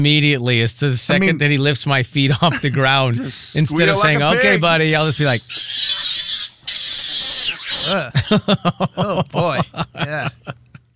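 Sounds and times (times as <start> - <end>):
speech: 0.0 - 6.1, 7.9 - 10.6
laughter: 2.3 - 4.7, 7.9 - 10.9
person imitating pig squeals: 3.8 - 8.2.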